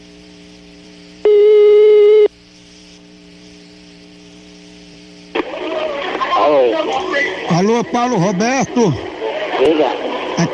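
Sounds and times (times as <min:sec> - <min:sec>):
telephone dialing tone: 0:01.2 - 0:02.3
speech: 0:06.6 - 0:10.5.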